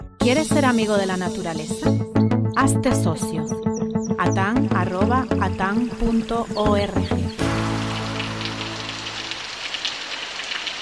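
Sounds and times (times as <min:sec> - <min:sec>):
speech: 0:00.2 - 0:07.4
steady rain falling: 0:05.8 - 0:10.8.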